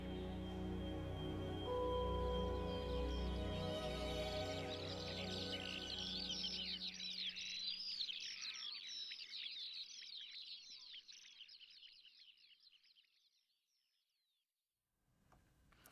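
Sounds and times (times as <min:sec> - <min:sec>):
low sustained music: 0:00.0 - 0:07.8
dense chorus of birdsong: 0:00.0 - 0:12.6.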